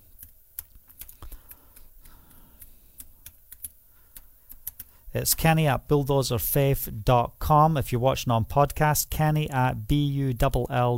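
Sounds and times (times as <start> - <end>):
typing an email on a computer keyboard: 0.1 - 5.0
speech: 5.2 - 10.9.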